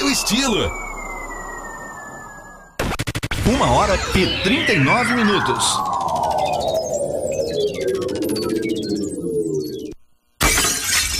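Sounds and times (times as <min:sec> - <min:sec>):
sweeping wavering electronic tones: 0:00.0 - 0:10.4
speech: 0:00.2 - 0:00.8, 0:03.5 - 0:06.0
glass shattering: 0:10.4 - 0:11.1.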